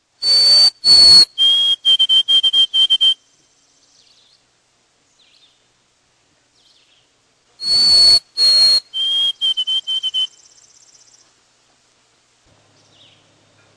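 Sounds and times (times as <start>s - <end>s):
white-throated sparrow singing: 0.2s - 4.4s, 6.6s - 11.3s.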